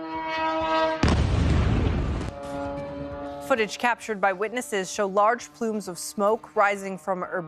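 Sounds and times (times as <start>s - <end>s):
steady droning horn-like tone: 0.0s - 1.2s, 2.0s - 7.4s
loud explosion: 1.0s - 2.4s
speech: 3.5s - 7.4s.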